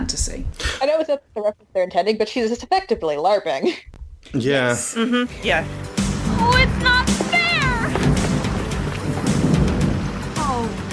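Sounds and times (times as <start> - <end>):
speech: 0.2 - 7.2
thunder rumbling: 6.2 - 10.9
heavy rain: 6.4 - 10.9.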